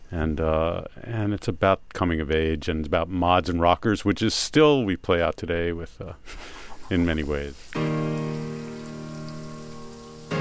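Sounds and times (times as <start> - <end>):
speech: 0.1 - 8.5
steady rain pattering on a surface: 6.6 - 10.3.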